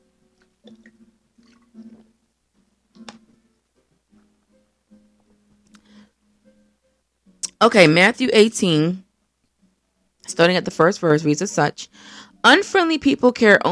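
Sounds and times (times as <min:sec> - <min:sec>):
speaker sipping water: 0:00.4 - 0:02.2
speech: 0:07.6 - 0:09.0, 0:10.3 - 0:13.7.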